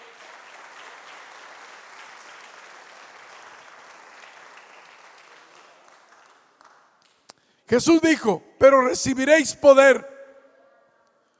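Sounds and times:
church congregation applauding during a service: 0.0 - 7.2
speech: 7.7 - 10.1.

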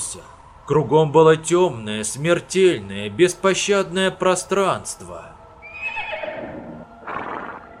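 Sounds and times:
speech: 0.1 - 5.4
roan stallion neighing: 5.6 - 7.7
roan stallion snorting: 6.2 - 7.7.

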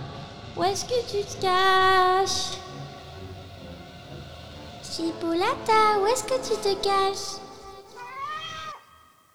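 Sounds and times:
speech: 0.6 - 2.7, 5.0 - 7.4
cat meowing: 7.9 - 9.1.

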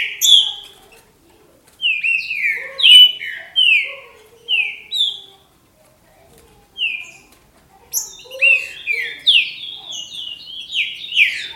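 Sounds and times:
Green-winged saltator singing loud whistled notes: 0.0 - 0.7, 1.8 - 5.3, 6.8 - 7.3, 8.0 - 11.5.

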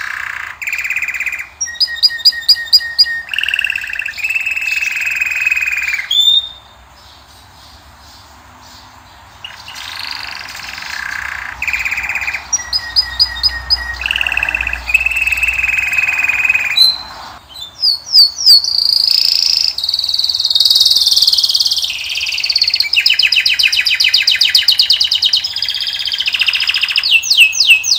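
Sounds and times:
canary singing: 0.0 - 27.9.

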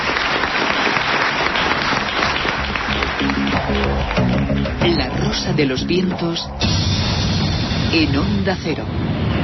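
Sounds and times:
audience applause: 0.0 - 5.6
speech: 5.4 - 6.9, 7.9 - 9.3.

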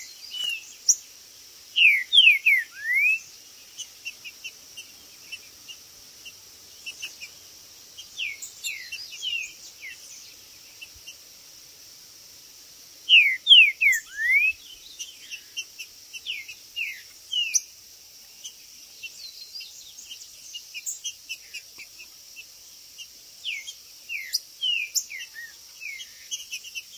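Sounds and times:
steady high hiss: 0.0 - 26.9
green-winged saltator whistling song: 1.8 - 3.3, 13.1 - 14.7.

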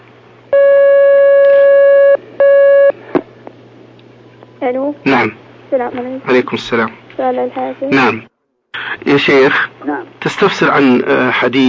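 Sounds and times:
telephone line beeps as a phone-in call connects: 0.5 - 3.0
speech: 4.6 - 11.6.

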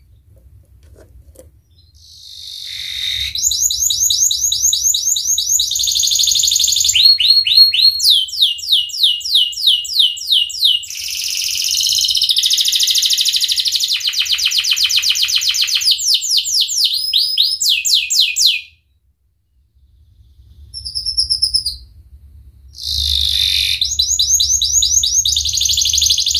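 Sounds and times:
Atlantic canary singing vigorously with rapid trills and chattering tours: 1.7 - 18.6, 22.8 - 26.3.

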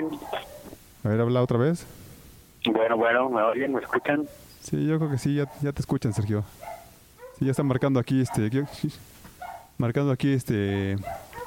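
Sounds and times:
small female dog barking: 0.0 - 0.8, 5.0 - 9.8, 11.0 - 11.4
speech: 0.0 - 2.0, 2.7 - 6.7, 7.4 - 9.1, 9.8 - 11.2.

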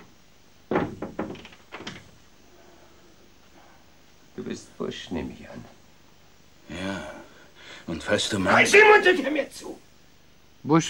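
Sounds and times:
door being closed: 0.7 - 2.2
speech: 4.6 - 5.8, 7.9 - 9.7, 10.6 - 10.8.

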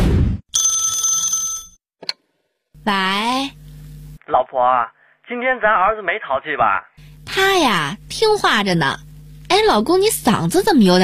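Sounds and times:
telephone ringing with an incoming call from an unknown number: 0.6 - 1.8
speech: 2.9 - 3.6, 4.3 - 11.0.

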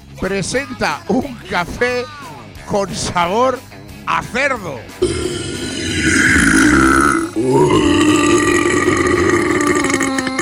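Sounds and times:
speech: 0.2 - 5.4, 6.0 - 6.6, 7.4 - 7.9
long loud drawn-out burp: 5.0 - 10.4.

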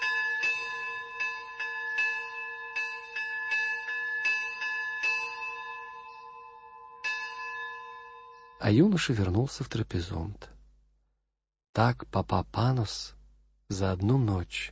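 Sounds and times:
church bell rung by a priest at a village church: 0.0 - 8.6
speech: 8.6 - 10.5, 11.8 - 14.6.

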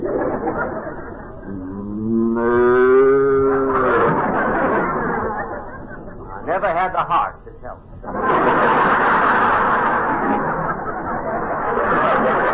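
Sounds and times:
laughter: 0.0 - 7.4, 8.0 - 12.5
cow being ridden mooing: 1.5 - 3.9.

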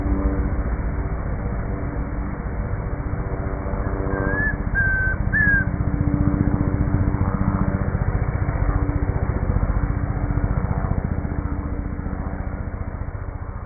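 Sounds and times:
steady low rumble: 0.0 - 13.6
chestnut-crowned antpitta Grallaria ruficapilla whistling three pure notes on a farm in Bogota Colombia: 4.1 - 5.7.

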